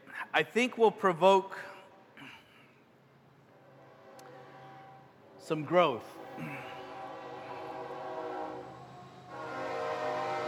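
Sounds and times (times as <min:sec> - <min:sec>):
speech: 0:00.4 - 0:01.7, 0:05.5 - 0:06.6
train passing with rumble and tonal drone: 0:02.9 - 0:10.4.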